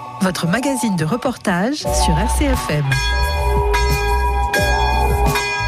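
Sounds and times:
speech: 0.3 - 3.8
church bell ringing to call the faithful together: 1.9 - 5.6.

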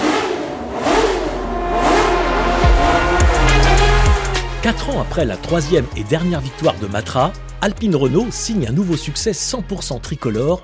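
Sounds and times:
racing car engine revving: 0.0 - 8.2
speech: 4.7 - 10.6.

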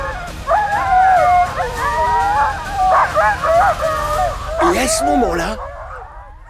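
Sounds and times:
pack of sled dogs barking, yelping and howling: 0.0 - 6.4
speech: 4.8 - 5.7.

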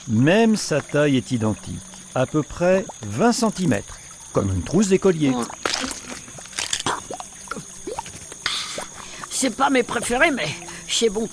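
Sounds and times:
speech: 0.0 - 6.0, 9.4 - 11.3
small reptile chewing an insect: 5.3 - 9.1.

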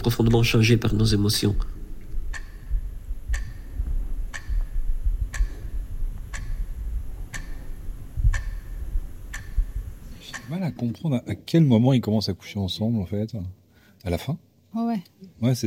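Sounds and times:
speech: 0.0 - 1.8, 10.8 - 15.6
soft low rumble: 0.0 - 10.9
clock ticking: 2.3 - 10.9.

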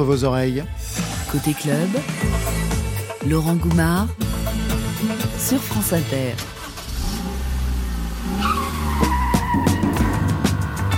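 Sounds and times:
speech: 0.0 - 6.5
getaway car engine revving and roaring: 4.8 - 10.9
getaway car tires skidding and screeching: 6.4 - 10.9.

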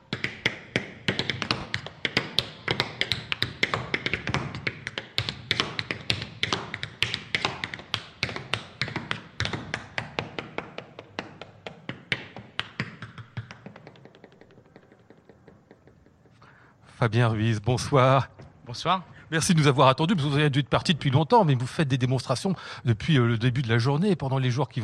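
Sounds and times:
tap dancing shoes clattering on a hard floor: 0.0 - 16.4
speech: 17.0 - 24.8.

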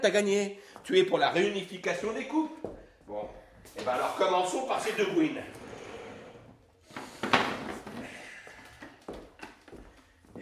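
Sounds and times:
speech: 0.0 - 5.6
two chairs being fitted into one another: 5.5 - 8.2.

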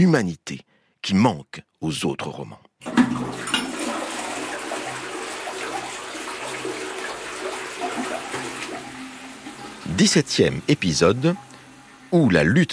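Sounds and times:
speech: 0.0 - 3.4, 10.0 - 11.5, 12.1 - 12.7
toilet flushing: 2.8 - 12.7.

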